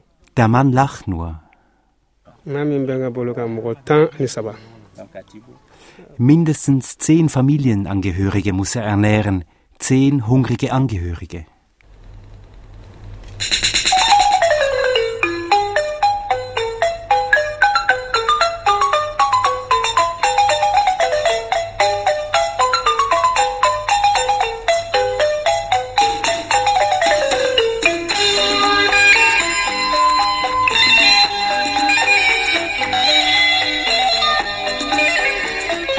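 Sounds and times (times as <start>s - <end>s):
speech: 0.4s - 1.4s, 2.4s - 11.5s
mobile phone ringtone with bright electronic melody: 13.4s - 35.9s.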